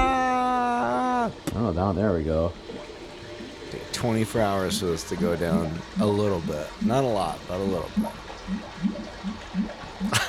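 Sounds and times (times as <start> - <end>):
toilet tank refilling with water in a toilet with a clogged drain: 1.1 - 10.2
speech: 1.6 - 2.8, 3.9 - 9.0
water splashing: 2.5 - 10.2.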